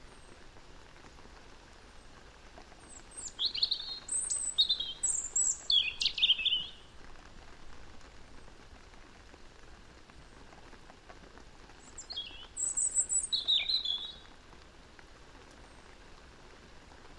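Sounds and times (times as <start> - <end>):
European robin Erithacus rubecula singing rapid high twittering phrases: 2.9 - 6.8, 11.8 - 14.2.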